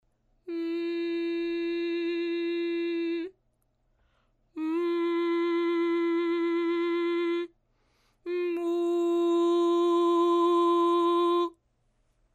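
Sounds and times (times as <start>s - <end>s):
voice singing with closed mouth: 0.4s - 3.4s, 4.6s - 7.5s, 8.3s - 11.6s.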